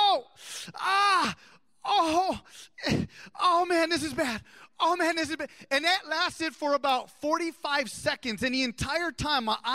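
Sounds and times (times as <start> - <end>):
man lying down imitating pained groaning: 0.0 - 3.6
speech: 0.7 - 9.7.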